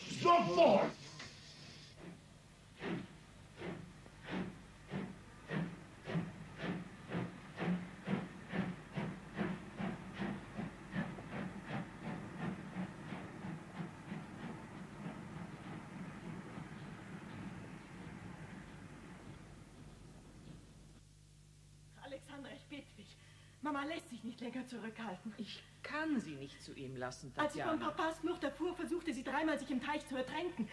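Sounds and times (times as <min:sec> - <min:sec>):
steam train hissing and chuffing: 0:00.0 - 0:20.0
speech: 0:00.2 - 0:01.0, 0:22.7 - 0:30.7.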